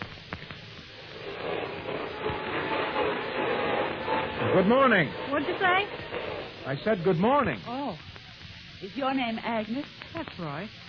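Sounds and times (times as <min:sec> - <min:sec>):
vacuum cleaner running behind a closed door: 0:00.0 - 0:08.3
speech: 0:04.6 - 0:08.1, 0:08.8 - 0:10.8.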